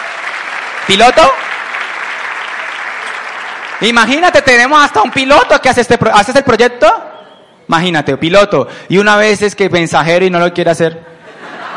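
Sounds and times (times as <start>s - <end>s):
audience clapping: 0.0s - 5.9s
speech: 0.9s - 1.5s, 3.8s - 7.1s, 7.7s - 11.1s
laughter: 11.2s - 11.7s.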